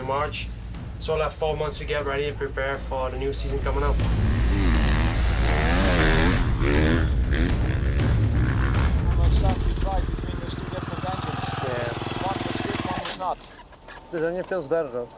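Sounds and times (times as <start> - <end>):
speech: 0.1 - 4.4, 13.2 - 15.1
dirt bike engine revving hard in third gear during a training ride: 3.3 - 13.2.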